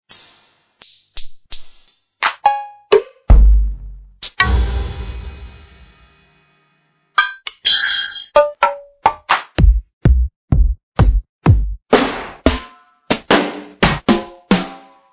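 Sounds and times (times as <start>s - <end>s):
studio drums: 0.1s - 6.1s, 9.1s - 14.9s.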